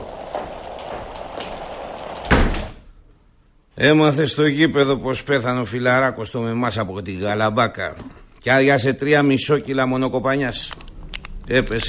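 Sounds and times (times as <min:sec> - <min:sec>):
door shutting with a thud: 0:00.0 - 0:02.9
speech: 0:03.8 - 0:10.8, 0:11.5 - 0:11.8.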